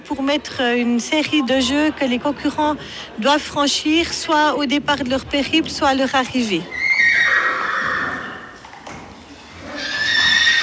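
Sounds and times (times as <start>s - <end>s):
speech: 0.1s - 7.2s
horse whinnying loudly: 6.7s - 8.6s, 9.6s - 10.6s.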